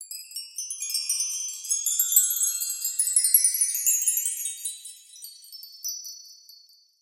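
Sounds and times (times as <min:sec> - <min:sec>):
chimes: 0:00.0 - 0:07.0.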